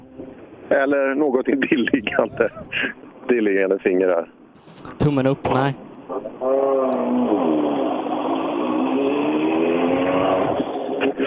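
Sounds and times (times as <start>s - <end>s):
speech: 0.7s - 7.3s
racing car engine roaring at the finish of a race: 6.4s - 11.2s.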